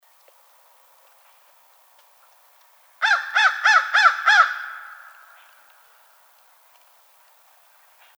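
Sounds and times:
American crow giving harsh nasal caws: 0:03.0 - 0:06.0.

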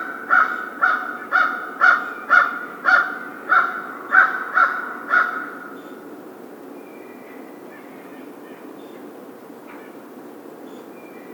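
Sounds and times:
American crow cawing: 0:00.0 - 0:05.8.

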